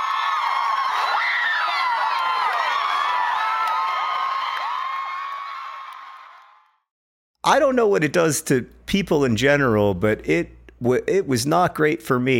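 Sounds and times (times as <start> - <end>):
convention crowd screaming and cheering as people crowd surf: 0.0 - 6.7
speech: 7.5 - 12.3.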